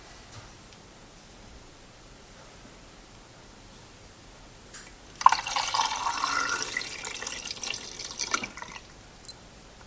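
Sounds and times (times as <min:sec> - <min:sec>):
film developer poured into a film developing tank: 0:05.2 - 0:08.9.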